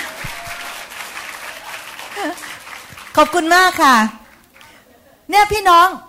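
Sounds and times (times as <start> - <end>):
audience applauding performers: 0.0 - 4.8
speech: 3.2 - 4.2, 5.3 - 6.0.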